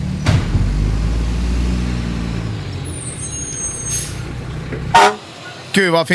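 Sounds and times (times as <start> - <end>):
heavy truck engine rumbling past: 0.0 - 6.1
faint high squeal: 3.0 - 4.2
truck air brakes hissing: 3.0 - 4.3
speech: 5.8 - 6.1.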